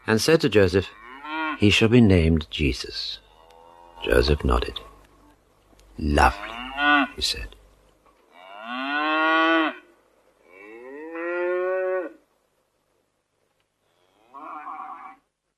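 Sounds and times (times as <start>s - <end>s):
speech: 0.1s - 1.0s, 1.6s - 3.2s, 4.0s - 4.9s, 6.0s - 7.6s
cattle mooing in a cattle shed: 0.9s - 1.6s, 3.2s - 5.3s, 6.2s - 7.2s, 8.3s - 9.8s, 10.5s - 12.2s, 14.0s - 15.2s.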